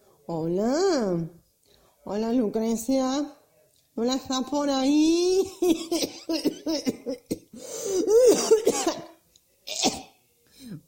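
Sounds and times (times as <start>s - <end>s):
speech: 0.3s - 1.4s, 2.0s - 3.4s, 4.0s - 9.0s
harsh chesty coughing of a longtime former smoker: 5.7s - 10.2s.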